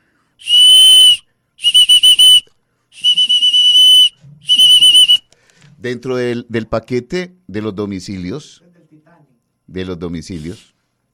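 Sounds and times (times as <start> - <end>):
small metal whistle blasts: 0.4 - 5.3
speech: 5.8 - 8.7, 9.7 - 10.7.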